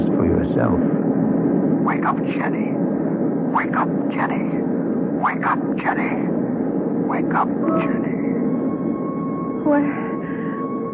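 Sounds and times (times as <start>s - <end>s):
voices: 0.0s - 1.1s, 1.7s - 8.4s
airplane cabin engine drone: 0.0s - 10.9s
speech: 0.6s - 1.1s, 1.9s - 6.5s, 7.1s - 8.6s, 9.6s - 10.1s.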